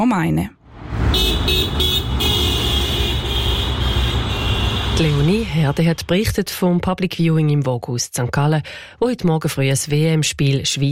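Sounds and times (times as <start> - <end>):
speech: 0.0 - 1.9, 5.0 - 10.9
busy morning street traffic at the market square in St. Gallen, Switzerland: 0.0 - 7.1
vehicle horn tooting in short bursts and a long blast: 1.1 - 5.9.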